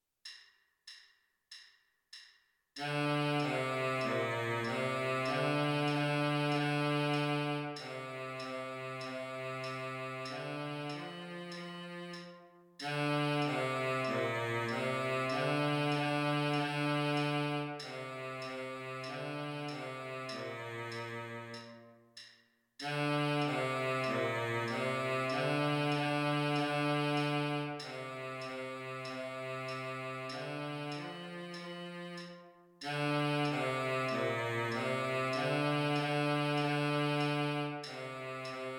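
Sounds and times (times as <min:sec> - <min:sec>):
baritone saxophone: 0:02.8 - 0:21.8, 0:22.8 - 0:38.7.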